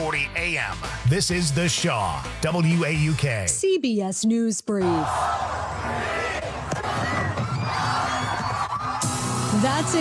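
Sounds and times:
speech: 0:00.1 - 0:06.2, 0:09.6 - 0:09.9
large crowd cheering and shouting at New Year: 0:04.8 - 0:09.9.

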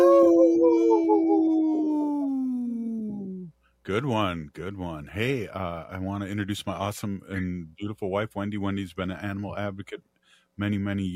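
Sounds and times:
single long mournful wolf howl: 0:00.0 - 0:03.4
speech: 0:03.9 - 0:11.1.

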